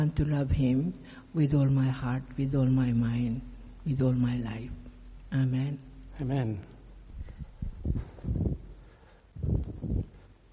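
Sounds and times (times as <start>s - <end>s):
speech: 0.0s - 6.8s
gusts of wind buffeting the microphone: 7.1s - 10.2s.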